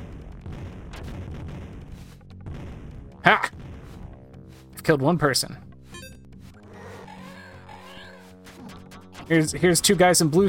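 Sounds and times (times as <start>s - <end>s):
grenade explosions in a retro video game: 0.0s - 4.6s
speech: 3.2s - 3.6s, 4.8s - 5.7s, 9.3s - 10.4s.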